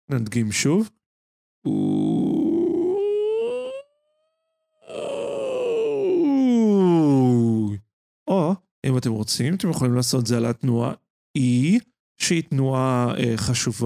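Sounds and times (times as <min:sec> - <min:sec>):
speech: 0:00.1 - 0:01.0, 0:01.6 - 0:02.3, 0:08.9 - 0:13.8
voice singing a cry-like vocal exercise glide on an oo vowel: 0:01.7 - 0:03.9, 0:04.8 - 0:07.6.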